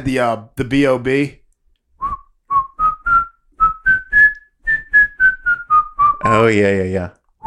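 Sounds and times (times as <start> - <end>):
speech: 0.0 - 1.4, 6.3 - 7.2
whistled melody from a pop song: 2.0 - 6.5.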